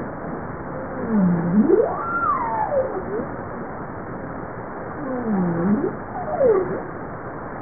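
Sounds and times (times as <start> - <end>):
hissing ocean background: 0.0 - 7.5
bowhead whale swooping calls: 1.0 - 3.3, 5.0 - 6.9.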